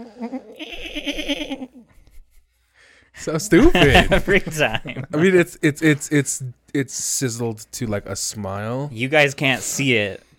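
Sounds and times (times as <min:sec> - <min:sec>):
laughter: 0:00.2 - 0:02.3, 0:03.3 - 0:05.3
person imitating a goat bleat: 0:00.5 - 0:01.7
speech: 0:01.0 - 0:01.6, 0:03.2 - 0:10.3.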